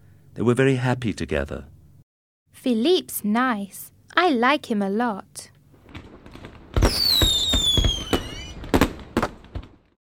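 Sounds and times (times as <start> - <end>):
speech: 0.4 - 1.7, 2.6 - 5.5
fireworks bangs and crackles: 5.8 - 10.0
whistling rocket streaking upward: 6.8 - 8.9.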